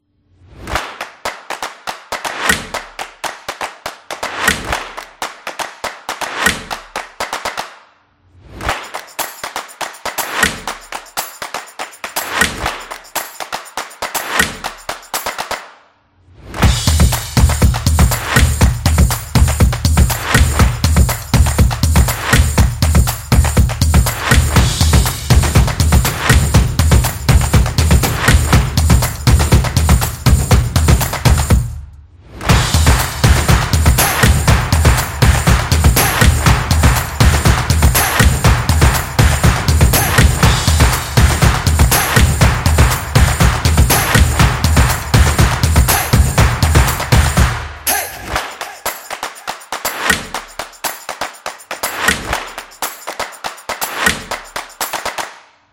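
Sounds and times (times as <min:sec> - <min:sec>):
hand clapping: 0:00.6 - 0:07.8, 0:08.5 - 0:15.8, 0:16.6 - 0:31.7, 0:32.4 - 0:55.5
drums: 0:16.6 - 0:31.7, 0:32.5 - 0:47.6.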